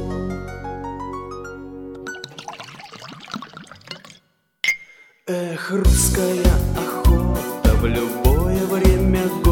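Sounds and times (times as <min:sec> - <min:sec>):
vodka being poured into a glass: 0:02.0 - 0:04.3
glass clink: 0:03.7 - 0:05.2
speech: 0:05.3 - 0:09.4.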